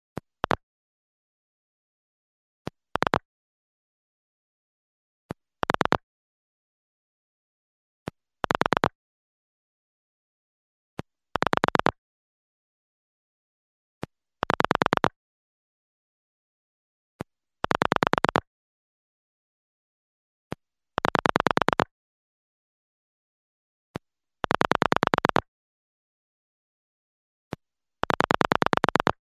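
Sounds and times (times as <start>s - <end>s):
pulse dialling heard in a telephone handset: 3.0s - 3.2s, 5.6s - 6.0s, 8.4s - 9.0s, 11.4s - 12.0s, 14.4s - 15.2s, 17.6s - 18.5s, 21.0s - 21.9s, 24.4s - 25.5s, 28.0s - 29.2s.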